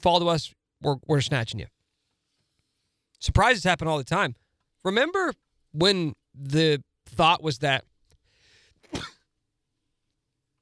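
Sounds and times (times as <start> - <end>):
speech: 0.0 - 1.8, 3.2 - 7.9
person sneezing: 8.8 - 9.3.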